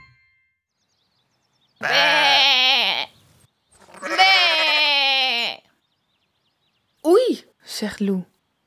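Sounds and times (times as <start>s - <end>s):
sheep bleating: 1.8s - 3.1s, 4.0s - 5.7s
speech: 7.9s - 8.4s.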